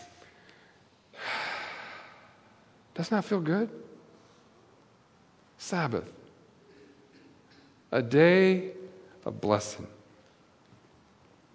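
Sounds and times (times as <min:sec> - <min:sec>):
slow deep breath in and out during guided breathing: 0:00.2 - 0:02.5
speech: 0:03.0 - 0:03.9, 0:05.7 - 0:06.2, 0:07.9 - 0:10.0.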